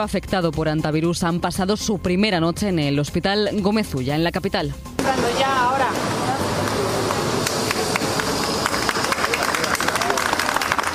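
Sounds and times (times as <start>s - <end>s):
speech: 0.0s - 6.2s
crowd murmur outdoors: 5.0s - 10.9s
group of people applauding outdoors at a hospital in Madrid Spain: 5.9s - 10.9s.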